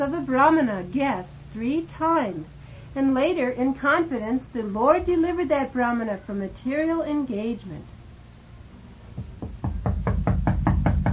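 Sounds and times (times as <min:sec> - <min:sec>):
speech: 0:00.0 - 0:08.0
knocking on a door: 0:09.2 - 0:11.1.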